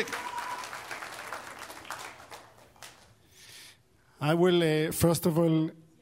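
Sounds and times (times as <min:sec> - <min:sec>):
speech: 0:00.0 - 0:00.2, 0:04.2 - 0:05.8
audience applauding: 0:00.0 - 0:03.2.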